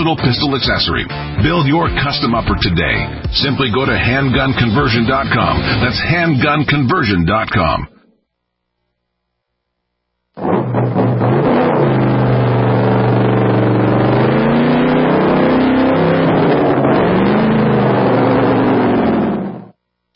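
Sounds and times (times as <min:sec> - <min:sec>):
speech: 0:00.0 - 0:08.0
hot rod drag racing car engine revving: 0:10.4 - 0:19.7.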